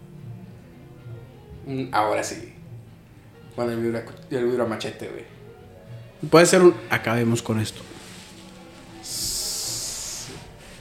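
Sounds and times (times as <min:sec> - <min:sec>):
speech: 0:01.7 - 0:02.6, 0:03.6 - 0:05.4, 0:06.2 - 0:07.9
steady breathy snake-like hiss: 0:07.8 - 0:10.7.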